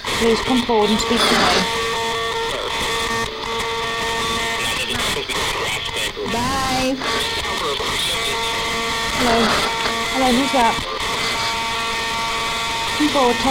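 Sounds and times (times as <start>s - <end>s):
hissing static from a ghost-hunting box: 0.0s - 13.4s
warbling, sweeping radio tones: 0.0s - 13.4s
speech: 0.2s - 1.8s, 9.2s - 10.9s, 13.0s - 13.4s.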